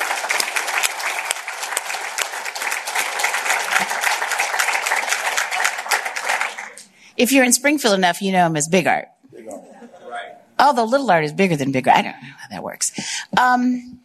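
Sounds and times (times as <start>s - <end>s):
crowd applauding a former majority leader: 0.0s - 7.0s
speech: 7.2s - 9.1s, 10.6s - 12.3s, 12.9s - 14.0s.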